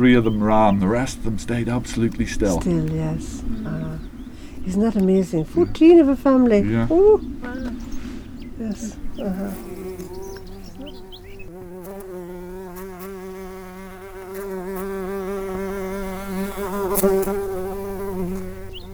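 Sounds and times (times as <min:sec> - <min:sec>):
speech: 0:00.0 - 0:04.1, 0:04.7 - 0:07.8, 0:08.6 - 0:09.9, 0:17.0 - 0:17.4
many bees buzzing around a hive in the Marble Arch Caves Geopark: 0:00.0 - 0:18.9.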